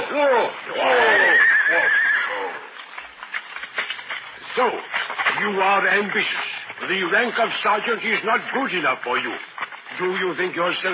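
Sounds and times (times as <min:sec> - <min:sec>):
horse neighing: 0:00.0 - 0:02.8
speech: 0:05.6 - 0:10.9.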